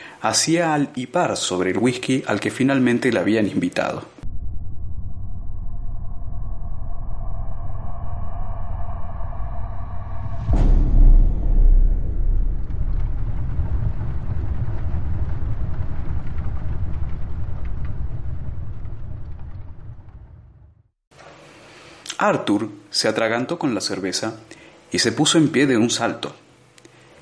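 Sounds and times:
speech: 0:00.2 - 0:04.2, 0:22.2 - 0:26.4
steady low mechanical rumble: 0:04.2 - 0:20.8.

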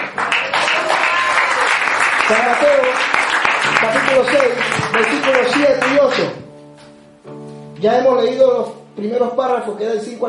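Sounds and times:
audience applauding: 0:00.0 - 0:06.5
speech: 0:02.3 - 0:06.4, 0:07.8 - 0:10.2.

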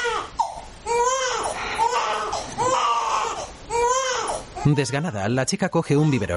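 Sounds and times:
baby crying on a sofa: 0:00.0 - 0:05.1
speech: 0:04.6 - 0:06.3.

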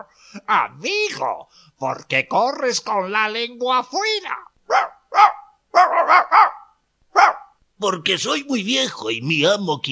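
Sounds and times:
speech: 0:00.7 - 0:04.9, 0:07.8 - 0:09.8
hunting dog barking: 0:04.7 - 0:07.6.

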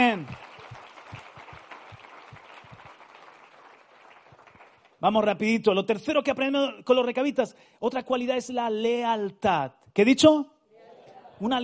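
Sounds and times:
speech: 0:00.0 - 0:00.5, 0:05.0 - 0:10.5, 0:11.4 - 0:11.6
church audience applauding: 0:00.0 - 0:05.0.

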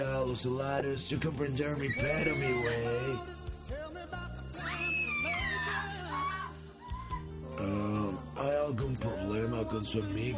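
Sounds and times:
speech: 0:00.0 - 0:04.3, 0:08.4 - 0:10.3
shrill high-pitched scream: 0:01.8 - 0:03.2, 0:04.6 - 0:07.1
short faint cries: 0:01.9 - 0:03.2, 0:04.6 - 0:06.5.

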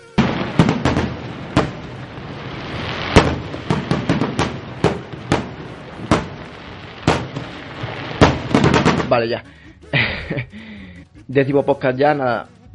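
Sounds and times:
fireworks crackling and banging: 0:00.0 - 0:09.4
speech: 0:09.2 - 0:09.6, 0:10.3 - 0:10.7, 0:11.3 - 0:12.7
laughter: 0:09.8 - 0:10.6.

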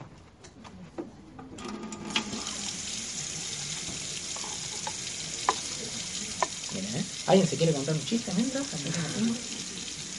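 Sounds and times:
water pouring into small glasses: 0:02.1 - 0:10.1
speech: 0:07.3 - 0:09.6.

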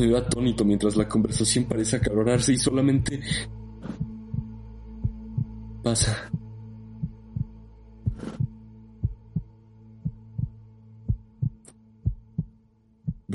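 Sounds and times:
speech: 0:00.0 - 0:03.6, 0:05.8 - 0:06.4
heartbeat sound effect thumping in lub-dub beats: 0:03.0 - 0:05.6, 0:06.2 - 0:13.3.

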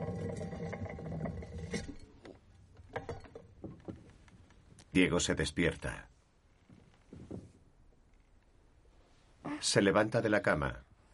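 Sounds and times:
tin can rolling across a hard floor: 0:00.0 - 0:04.1
speech: 0:05.0 - 0:06.1, 0:09.7 - 0:10.9.

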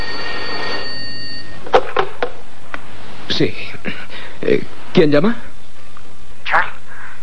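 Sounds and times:
telephone ringing with bright metallic tone: 0:00.0 - 0:01.8
speech: 0:03.4 - 0:05.5.

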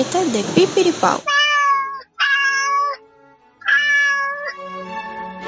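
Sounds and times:
speech: 0:00.0 - 0:01.4
cat meowing and wailing: 0:01.2 - 0:03.0, 0:03.6 - 0:04.6.

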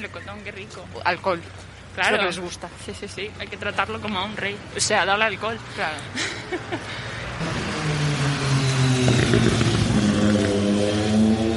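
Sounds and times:
speech: 0:00.0 - 0:07.7
laughter: 0:06.0 - 0:07.2
motorcycle engine revving past: 0:07.4 - 0:11.5.

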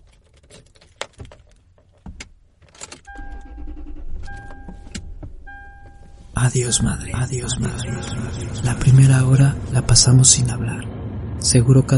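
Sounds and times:
car engine starting and rumbling: 0:00.0 - 0:11.9
clicks and thumps of someone getting into a car: 0:00.4 - 0:06.4
dashboard warning chime: 0:03.1 - 0:09.2
speech: 0:06.4 - 0:11.9.

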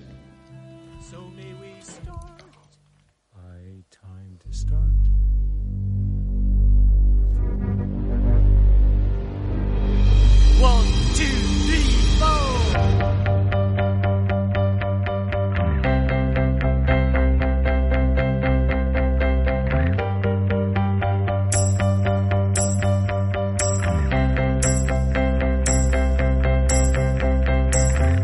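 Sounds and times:
speech: 0:01.1 - 0:02.4
instrumental opening music of a film musical: 0:04.5 - 0:28.2
bright bell-like chimes: 0:21.5 - 0:24.0.

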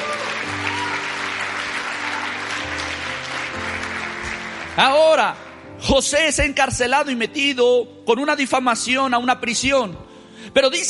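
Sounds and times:
church audience applauding: 0:00.0 - 0:05.6
sustained low keyboard chords: 0:00.0 - 0:10.8
speech: 0:04.8 - 0:10.8.

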